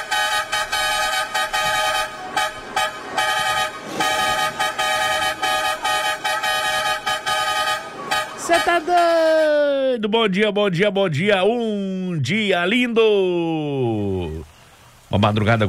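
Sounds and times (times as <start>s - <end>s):
car horn honking: 0.0s - 9.6s
speech: 10.0s - 14.5s, 15.1s - 15.6s.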